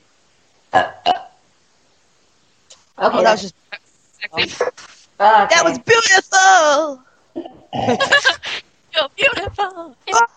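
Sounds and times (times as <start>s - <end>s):
loud burps: 0.7s - 1.4s, 7.4s - 8.2s
speech: 3.0s - 3.6s, 4.3s - 10.3s.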